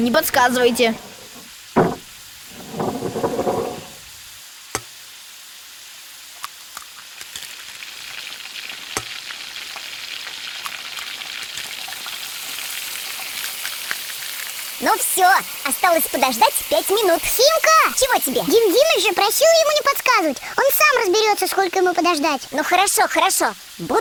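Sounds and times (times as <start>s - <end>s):
speech: 0.0s - 1.1s, 15.2s - 23.9s
knocks and clatters: 0.7s - 4.1s
butter and eggs frying in a pan: 3.5s - 23.9s.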